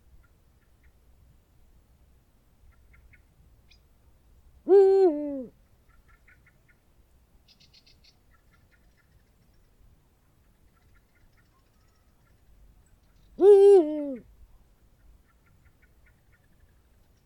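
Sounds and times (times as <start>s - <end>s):
Eurasian eagle-owl giving a deep two-note hoot: 4.7s - 5.5s, 13.4s - 14.2s.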